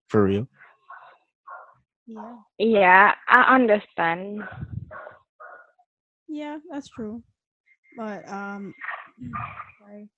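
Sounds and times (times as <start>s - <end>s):
speech: 0.1s - 0.6s, 2.1s - 5.1s, 6.3s - 7.3s, 8.0s - 10.1s
dogs barking: 0.9s - 1.8s, 4.4s - 5.8s.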